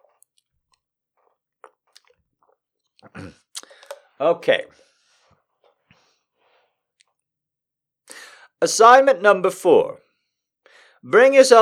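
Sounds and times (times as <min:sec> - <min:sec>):
soft wet mouth clicks: 0:00.0 - 0:04.1, 0:07.0 - 0:07.2
person taking a quick sip of water: 0:00.0 - 0:04.2
short swallowing gulp: 0:00.0 - 0:04.2
speech: 0:04.2 - 0:04.8, 0:08.6 - 0:10.0, 0:11.0 - 0:11.6.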